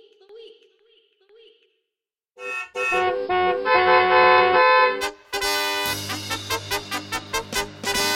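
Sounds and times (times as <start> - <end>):
car horn honking: 2.4 - 8.1.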